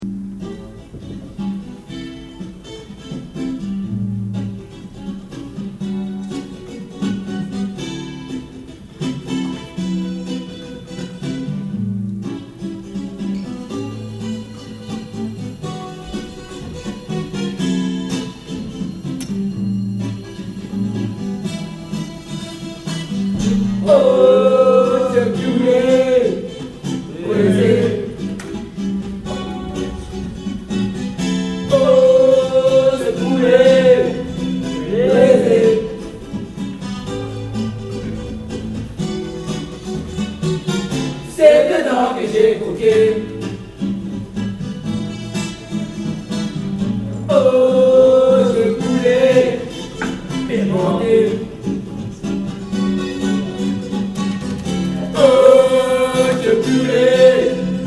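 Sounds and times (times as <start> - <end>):
blues music without children: 0.0 - 57.8.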